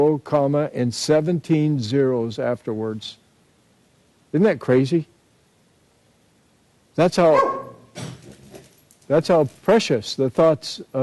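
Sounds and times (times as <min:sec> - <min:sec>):
speech: 0:00.0 - 0:03.2, 0:04.3 - 0:05.1, 0:07.0 - 0:08.1, 0:09.1 - 0:11.0
dog barking: 0:07.3 - 0:07.9
dog whining: 0:07.3 - 0:08.0.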